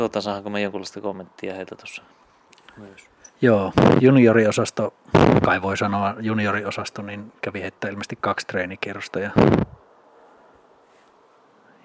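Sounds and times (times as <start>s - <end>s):
speech: 0.0s - 2.2s, 2.8s - 9.8s
mosquitoes buzzing on a cottage terrace: 3.4s - 9.8s
loud thump: 5.2s - 5.5s, 9.4s - 9.8s.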